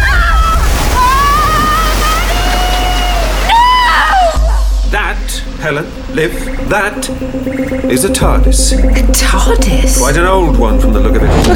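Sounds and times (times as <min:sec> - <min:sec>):
flooding river rushing water: 0:00.0 - 0:04.3
speech: 0:05.6 - 0:11.5.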